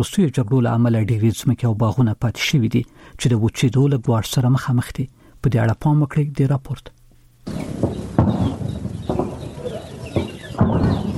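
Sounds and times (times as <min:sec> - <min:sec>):
speech: 0:00.0 - 0:08.6
birds chirping in orchards and gardens: 0:07.4 - 0:11.1.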